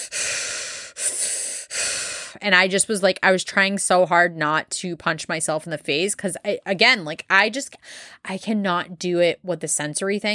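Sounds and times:
voice imitating heavy mechanical-sounding breathing: 0.0 - 2.4
speech: 2.4 - 10.3.

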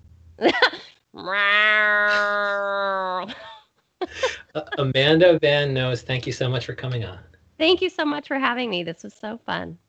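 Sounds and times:
speech: 0.4 - 0.7, 1.3 - 1.5, 4.6 - 9.8
person laughing: 0.4 - 0.9, 2.0 - 2.5, 3.2 - 6.0
person imitating a cat meow: 1.2 - 3.3.

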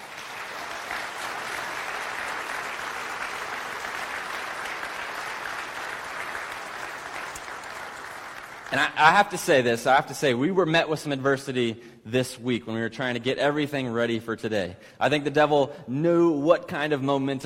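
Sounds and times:
large crowd applauding: 0.0 - 9.6
speech: 8.7 - 17.4.

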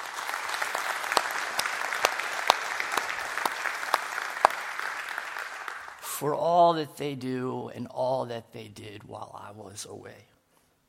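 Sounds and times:
room full of people applauding: 0.0 - 6.1
speech: 6.2 - 10.3.

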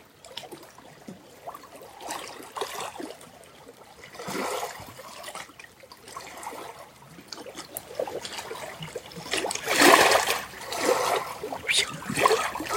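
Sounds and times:
water flowing with trickling gurgling texture: 6.0 - 12.7.

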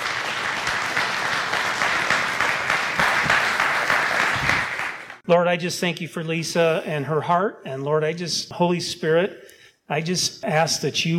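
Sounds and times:
crowd clapping: 0.0 - 5.2
speech: 5.3 - 11.1.

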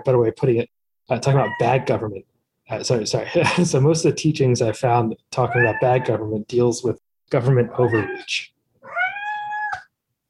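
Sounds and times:
speech: 0.0 - 8.5
cat meowing: 7.7 - 9.9.

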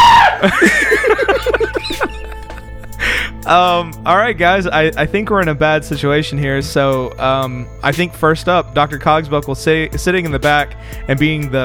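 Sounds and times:
person screaming: 0.0 - 0.6
speech: 0.4 - 0.9, 3.5 - 11.6
laughter: 0.4 - 3.7.

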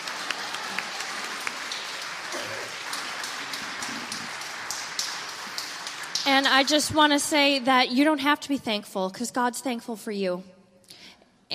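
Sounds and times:
church audience applauding: 0.0 - 7.4
speech: 6.3 - 10.6.

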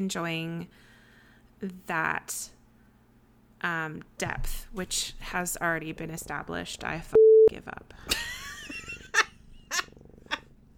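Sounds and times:
speech: 0.0 - 0.9, 1.6 - 2.6, 3.6 - 8.4
cat purring: 4.4 - 10.7.

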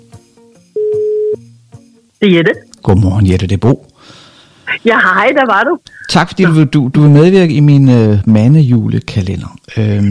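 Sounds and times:
telephone ringing tone: 0.8 - 1.4
speech: 2.2 - 3.9, 4.8 - 10.0.

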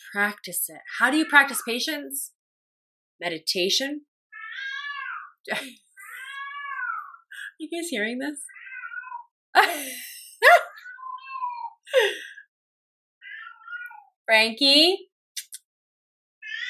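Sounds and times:
speech: 0.0 - 2.4, 3.2 - 4.1, 5.5 - 5.9, 7.6 - 8.5, 9.6 - 10.6, 14.3 - 15.1
cat meowing loud drawn-out wavering cries: 4.3 - 5.4, 6.0 - 7.2, 8.5 - 9.3, 10.8 - 11.8, 13.2 - 14.1, 16.4 - 16.6.

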